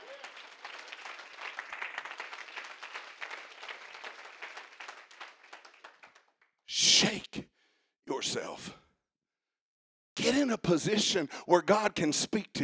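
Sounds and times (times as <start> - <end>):
congregation clapping: 0.0 - 7.2
speech: 8.2 - 8.8, 10.4 - 12.6.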